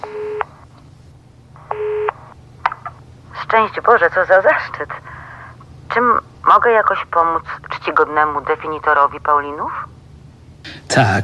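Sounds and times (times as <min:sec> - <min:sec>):
telephone dialed on speakerphone: 0:00.0 - 0:00.5, 0:01.6 - 0:02.9
speech: 0:03.5 - 0:05.1, 0:05.9 - 0:10.0, 0:10.9 - 0:11.2.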